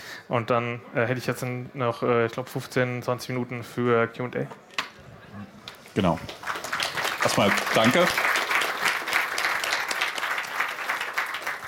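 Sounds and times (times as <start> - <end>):
speech: 0.3 - 4.7, 5.4 - 6.5, 7.2 - 8.3
audience applause after a talk: 6.3 - 11.6.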